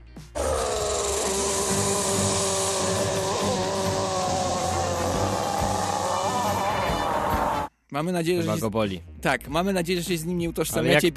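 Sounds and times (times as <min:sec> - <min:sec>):
cartoon rock monster crying out under water in a shower: 0:00.4 - 0:07.7
speech: 0:07.9 - 0:11.1.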